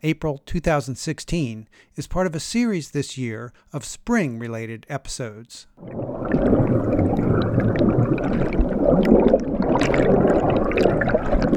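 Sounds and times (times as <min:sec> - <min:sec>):
speech: 0:00.0 - 0:06.6
Appomattox River water in Virginia gurgling above and below surface: 0:05.8 - 0:11.5.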